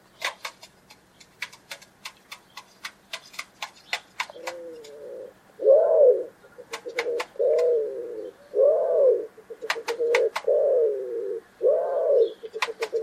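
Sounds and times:
bird making sharp clicks and taps: 0:00.2 - 0:05.0, 0:06.6 - 0:07.8, 0:09.5 - 0:10.6, 0:12.4 - 0:13.0
bird cooing with low mellow coos: 0:04.3 - 0:13.0.

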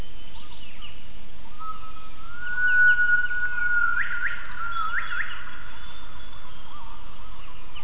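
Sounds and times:
background hiss: 0:00.0 - 0:07.8
gibbon whistled call: 0:01.7 - 0:05.7.

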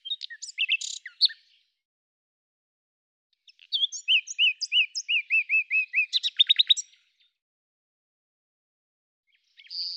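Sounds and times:
bird song with clear slurred whistled notes: 0:00.0 - 0:01.8, 0:03.4 - 0:07.4, 0:09.3 - 0:09.9.

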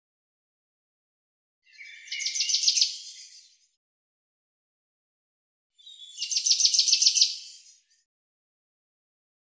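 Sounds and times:
common chaffinch singing: 0:01.6 - 0:03.7, 0:05.8 - 0:08.1.

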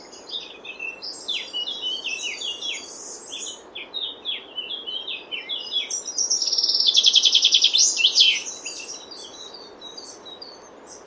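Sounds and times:
Common chaffinch song: 0:00.0 - 0:11.0.

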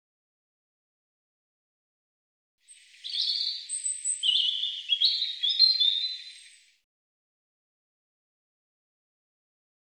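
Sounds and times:
European robin singing: 0:02.7 - 0:06.8.

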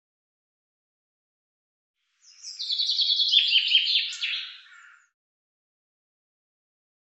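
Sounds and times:
common chaffinch song: 0:02.1 - 0:05.2.

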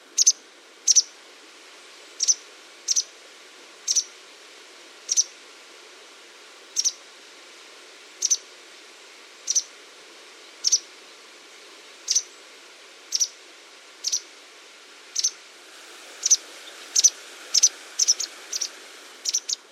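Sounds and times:
faint constant hiss: 0:00.0 - 0:19.6
white wagtail calls: 0:05.1 - 0:05.3, 0:10.6 - 0:10.8, 0:13.1 - 0:13.4, 0:14.0 - 0:14.2, 0:15.2 - 0:15.4, 0:16.2 - 0:19.6.

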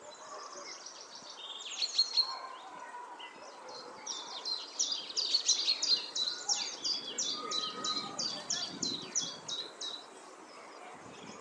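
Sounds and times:
common chaffinch song: 0:00.0 - 0:11.3.

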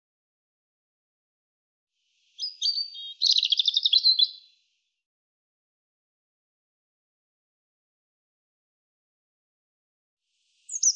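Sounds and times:
European robin singing: 0:02.2 - 0:04.6, 0:10.5 - 0:10.9.

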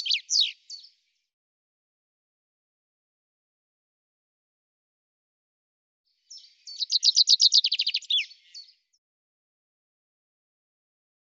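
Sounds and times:
common chaffinch singing a fast run of bright repeated notes: 0:00.0 - 0:01.0, 0:06.3 - 0:08.8.

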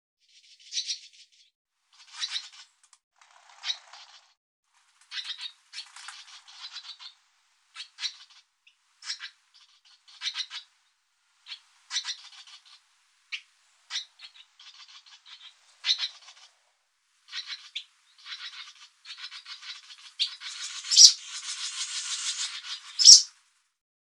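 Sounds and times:
bird scratchy rasping chatter: 0:01.9 - 0:02.7, 0:05.1 - 0:07.2, 0:07.8 - 0:08.4, 0:09.0 - 0:10.7, 0:11.5 - 0:16.5, 0:17.3 - 0:23.3.

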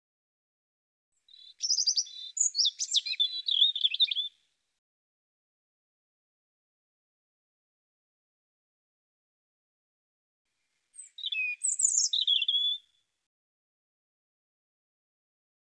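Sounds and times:
European robin singing warbles and trills: 0:01.2 - 0:04.4, 0:10.9 - 0:12.9.

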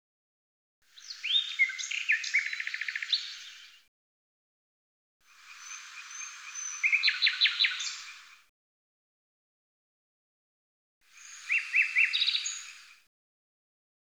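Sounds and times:
common nightingale song with whistles and trills: 0:00.9 - 0:03.9, 0:05.3 - 0:08.4, 0:11.1 - 0:13.0.

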